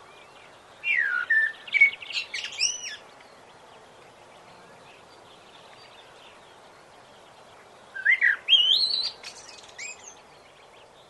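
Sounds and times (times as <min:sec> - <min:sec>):
blackbird singing: 0:00.0 - 0:11.0.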